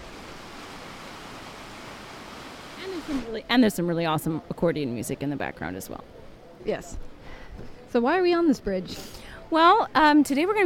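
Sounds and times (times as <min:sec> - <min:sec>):
Tiber river rushing beneath the Ponte Fabricio bridge in Rome: 0:00.0 - 0:03.5
speech: 0:02.9 - 0:10.6.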